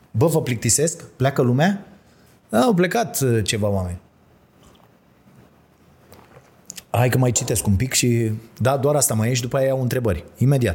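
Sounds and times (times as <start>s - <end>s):
speech: 0.2s - 1.9s, 2.5s - 4.1s, 7.0s - 10.7s
wet mouth sounds: 4.5s - 5.0s, 6.0s - 6.9s
person sipping water: 4.5s - 6.9s
person swallowing: 4.6s - 5.0s.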